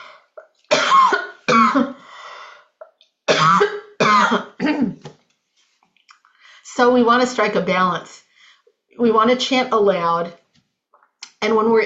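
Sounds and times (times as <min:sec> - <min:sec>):
person coughing: 0:00.7 - 0:02.0, 0:03.3 - 0:05.0
speech: 0:06.8 - 0:08.2, 0:09.0 - 0:10.4, 0:11.4 - 0:11.8.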